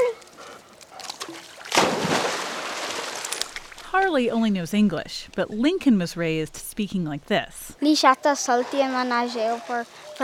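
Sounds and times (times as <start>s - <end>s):
churning, sloshing pool water: 0.9s - 7.8s
dog leaping into a backyard pool in Tucson: 1.2s - 3.8s
speech: 3.9s - 10.2s.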